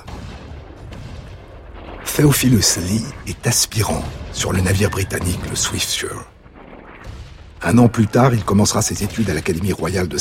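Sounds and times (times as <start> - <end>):
naval cannon fire during a sea battle at night: 0.0 - 10.2
speech: 2.2 - 6.4, 7.6 - 10.2.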